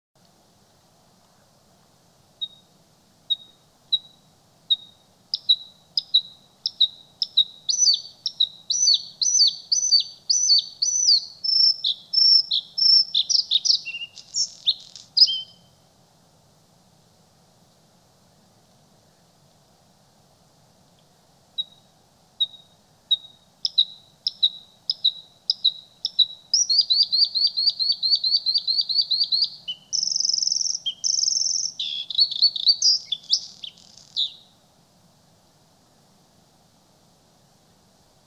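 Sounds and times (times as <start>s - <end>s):
bluethroat bird: 3.3s - 15.7s, 21.6s - 34.5s.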